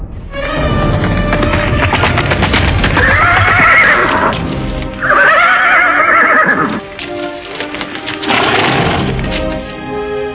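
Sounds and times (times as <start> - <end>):
horse hooves clattering into a courtyard: 0.3 - 10.1
horse whinnying: 2.8 - 4.4, 5.0 - 6.9.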